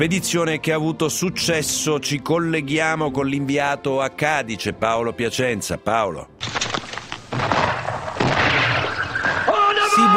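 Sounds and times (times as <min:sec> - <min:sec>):
speech: 0:00.0 - 0:06.6
heavy cannon fire during a naval siege of Cadiz: 0:06.4 - 0:09.5.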